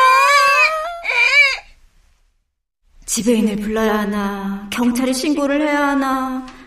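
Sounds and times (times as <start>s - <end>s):
infant wailing: 0.0s - 1.7s
speech: 3.2s - 6.6s.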